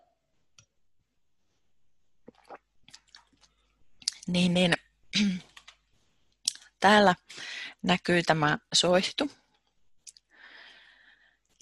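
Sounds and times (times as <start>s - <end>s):
sipping water: 2.2s - 4.2s
soft slurps and swallowing clicks: 2.2s - 4.2s
speech: 4.3s - 5.5s, 6.8s - 9.4s.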